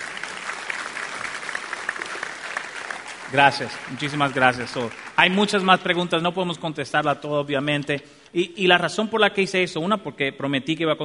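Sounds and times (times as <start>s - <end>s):
audience applause: 0.0s - 5.9s
speech: 3.3s - 11.0s.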